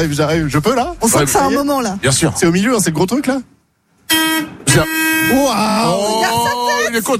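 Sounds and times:
speech: 0:00.0 - 0:07.1
bus horn honking: 0:04.1 - 0:06.9.

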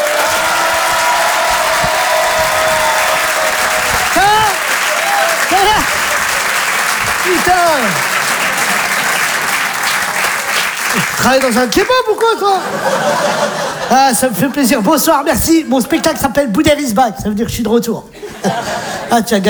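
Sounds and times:
audience whooping shouts: 0:00.0 - 0:08.2
audience clapping as a comedian is welcomed onstage at a stand-up show: 0:00.0 - 0:13.8
laughter: 0:00.0 - 0:16.8, 0:18.1 - 0:19.4
speech: 0:07.3 - 0:08.1, 0:11.2 - 0:19.4.

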